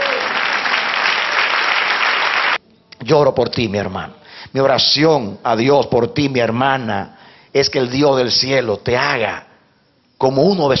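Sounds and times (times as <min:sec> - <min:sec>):
applause at a religious sermon: 0:00.0 - 0:02.6
speech: 0:03.1 - 0:09.5, 0:10.2 - 0:10.7.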